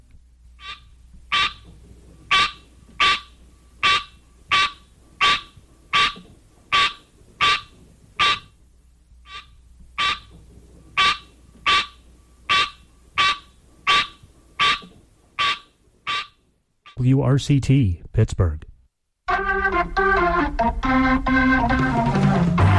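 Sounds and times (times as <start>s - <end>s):
green tree frog calling with nasal honking notes: 0.6s - 1.7s, 2.3s - 8.6s, 9.2s - 10.4s, 11.0s - 17.0s
speech: 17.0s - 18.7s, 19.9s - 22.6s.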